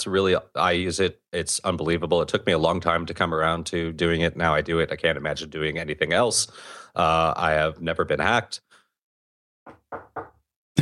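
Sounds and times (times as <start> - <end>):
speech: 0.0 - 8.7
hollow knocks on wood: 9.7 - 10.4.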